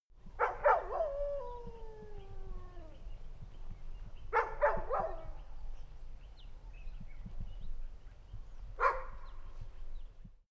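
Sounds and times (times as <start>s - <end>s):
dogs barking in autumn ambience: 0.4s - 2.2s, 4.4s - 5.3s.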